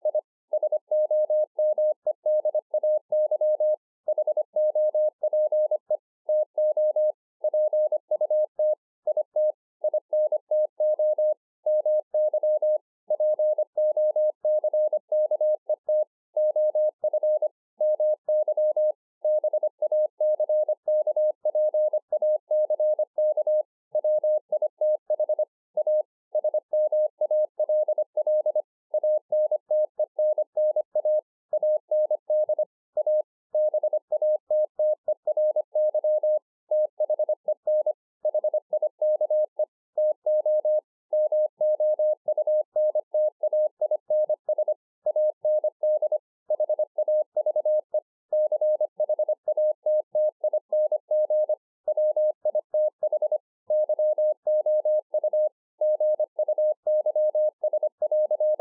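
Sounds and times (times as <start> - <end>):
morse code at 25 WPM: 0.0 - 58.5.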